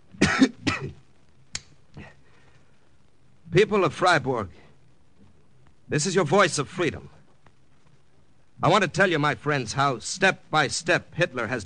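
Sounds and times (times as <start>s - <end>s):
man coughing: 0.2s - 1.0s
speech: 0.4s - 0.6s, 3.6s - 4.6s, 5.9s - 7.2s, 8.6s - 11.6s.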